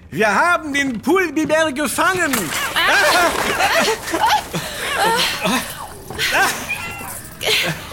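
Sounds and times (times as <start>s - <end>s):
speech: 0.1s - 6.7s, 7.4s - 7.9s
laughter: 2.5s - 7.9s
several cats meowing and yowling: 5.0s - 7.8s.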